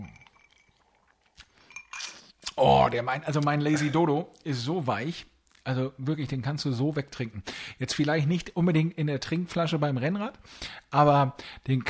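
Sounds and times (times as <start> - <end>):
glasses clinking in a toast: 0.0 - 2.2
speech: 2.6 - 11.8.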